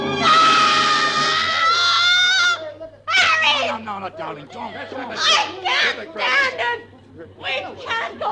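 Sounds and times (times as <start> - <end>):
woman letting out a long piercing shriek: 0.2 - 3.7
speech: 4.2 - 8.3.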